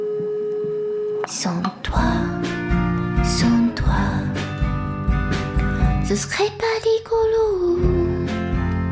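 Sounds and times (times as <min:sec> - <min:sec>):
telephone busy tone after a cut-off call: 0:00.0 - 0:01.4
French pop song with a sung voice: 0:01.2 - 0:08.8
speech: 0:01.3 - 0:02.5, 0:03.2 - 0:04.2, 0:06.1 - 0:08.0.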